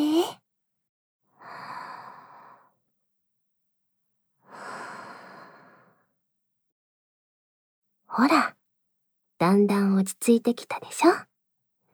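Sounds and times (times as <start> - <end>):
slow deep breathing during a relaxing massage: 1.4 - 2.7, 4.5 - 6.0
speech: 8.2 - 8.6, 9.5 - 11.3.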